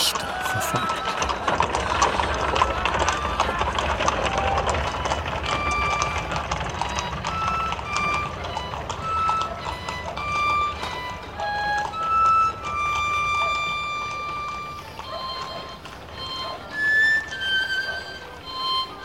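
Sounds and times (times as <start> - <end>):
horse hooves clip-clopping as a horse-drawn cab pulls away: 0.2 - 19.0
speech: 0.6 - 1.1.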